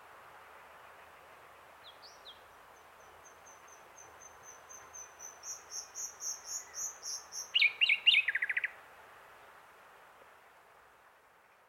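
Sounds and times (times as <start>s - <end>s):
common nightingale Luscinia megarhynchos song: 0.8s - 8.8s.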